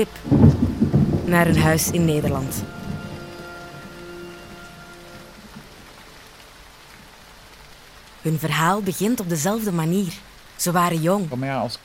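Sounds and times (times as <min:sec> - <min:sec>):
speech: 0:00.0 - 0:00.6, 0:01.3 - 0:02.8, 0:08.2 - 0:11.8
heavy rain drumming on a surface: 0:00.0 - 0:11.8
low rumble: 0:00.2 - 0:06.4.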